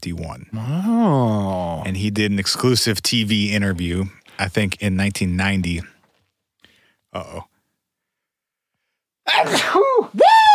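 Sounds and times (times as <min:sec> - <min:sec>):
speech: 0:00.0 - 0:05.9, 0:07.1 - 0:07.5, 0:09.3 - 0:10.2
rising vocal sound: 0:00.6 - 0:01.8
person sneezing: 0:09.3 - 0:10.2.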